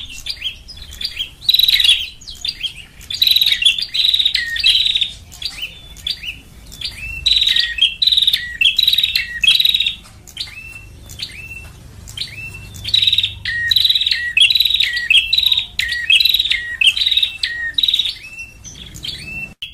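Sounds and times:
lovebird calls used as a trapping lure: 0.0 - 19.7.

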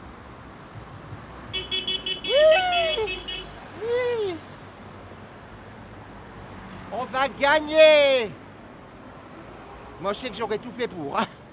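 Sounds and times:
road noise: 0.0 - 11.5
car horns honking at the entrance of a performance hall in Calais: 1.5 - 3.6
speech: 7.1 - 8.4, 10.0 - 11.4.

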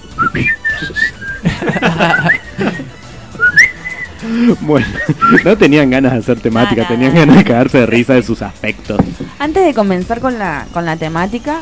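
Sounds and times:
person whistling: 0.1 - 1.4, 2.0 - 4.2, 4.8 - 5.6
speech: 0.3 - 1.0, 2.0 - 2.4, 4.5 - 11.6
laughter: 0.4 - 5.6.

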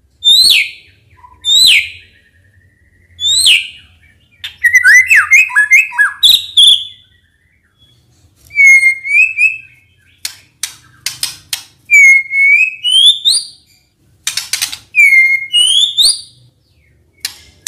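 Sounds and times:
white-rumped shama whistling as a lure sound: 0.3 - 9.9, 11.9 - 13.7, 15.0 - 16.4.

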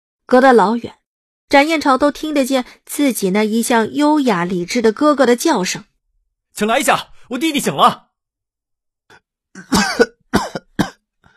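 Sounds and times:
speech: 0.3 - 5.9, 6.6 - 8.0, 9.6 - 10.4
man in a hospital bed coughing: 9.6 - 11.0.

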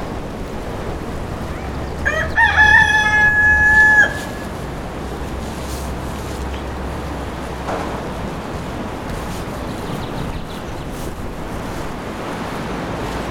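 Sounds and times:
steady low rushing background near a river: 0.0 - 13.2
rooster crowing near a river at Les Aspres in France: 1.6 - 4.7.

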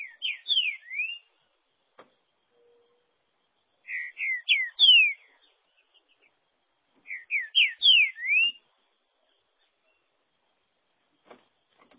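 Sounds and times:
green-winged saltator whistled song: 0.0 - 1.3, 3.9 - 5.3, 7.0 - 8.6.

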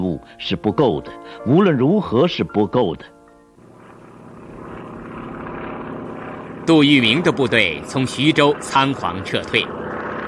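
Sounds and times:
propeller aircraft engine droning as a plane arrives over a village: 0.0 - 10.2
speech: 0.2 - 3.2, 6.7 - 10.2.

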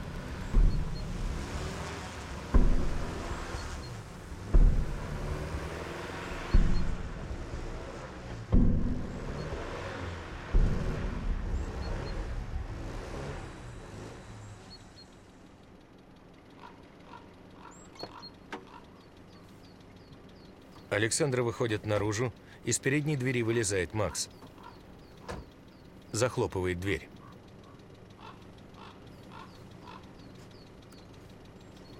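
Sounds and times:
car wheels spinning in snow on a forested winter road: 0.0 - 15.0
speech: 20.9 - 24.5, 26.2 - 27.2.

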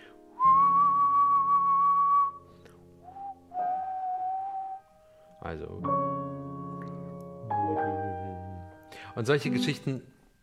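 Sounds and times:
person whistling a musical theme: 0.4 - 4.9
speech: 5.4 - 6.2, 9.2 - 10.2.

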